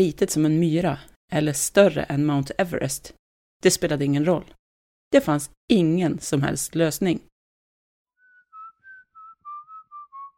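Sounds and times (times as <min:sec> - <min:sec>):
speech: 0:00.0 - 0:07.3
person whistling a short melodic tune: 0:08.2 - 0:10.3.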